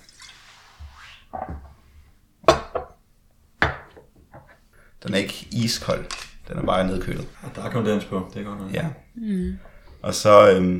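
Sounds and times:
chilled Stolichnaya vodka poured into a glass: 0.0s - 0.5s
speech: 5.0s - 10.7s.

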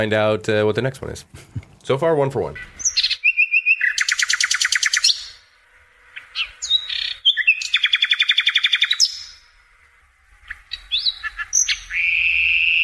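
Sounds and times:
speech: 0.0s - 2.8s
common European nightingale singing: 2.8s - 5.4s, 6.2s - 9.4s, 10.4s - 12.8s.

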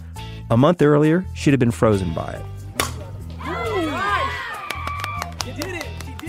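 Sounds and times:
speech: 0.5s - 2.6s
softball bat hitting a fastball: 2.7s - 3.4s
excited crowd cheering and shouting: 3.3s - 5.8s.

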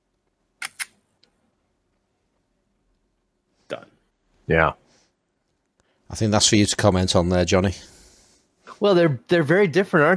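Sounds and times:
mechanical shutter of an early dual-stroke Leica M3 rangefinder camera firing: 0.6s - 1.0s
speech: 4.5s - 4.8s, 6.1s - 8.0s, 8.8s - 10.1s.

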